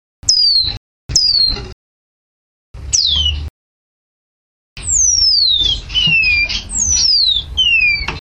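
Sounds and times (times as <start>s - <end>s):
lavender waxbill singing: 0.2s - 1.6s, 2.9s - 3.5s, 4.8s - 8.2s.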